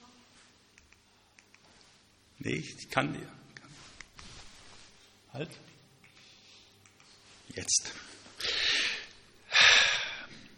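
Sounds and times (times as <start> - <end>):
speech: 2.4 - 3.4, 5.4 - 5.7, 7.6 - 8.1
man bent forward inhaling deeply: 8.4 - 10.4.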